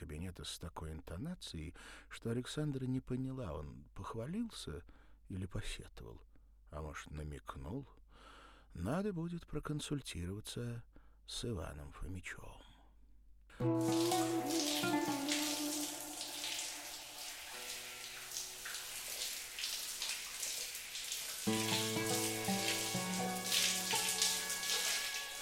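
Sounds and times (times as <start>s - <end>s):
speech: 0.3s - 12.7s, 13.6s - 15.4s
sustained musical tones: 13.6s - 18.2s, 21.5s - 25.4s
shower water spraying: 13.6s - 25.4s.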